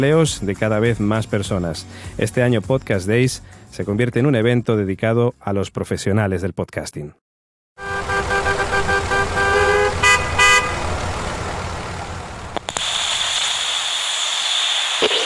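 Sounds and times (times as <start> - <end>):
speech: 0.0 - 7.2
car horns honking: 7.8 - 11.0
passing vehicles rushing past: 7.8 - 12.7
busy road traffic: 7.8 - 15.1.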